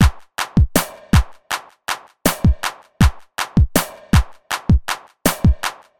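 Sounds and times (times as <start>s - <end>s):
909 drum machine: 0.0s - 5.9s.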